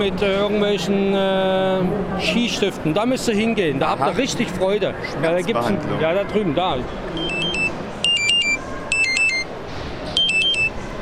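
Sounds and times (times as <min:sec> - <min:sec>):
speech: 0:00.0 - 0:07.2
low murmur: 0:00.0 - 0:11.0
telephone ringing in high warbling electronic tones: 0:07.2 - 0:09.5, 0:10.2 - 0:11.0.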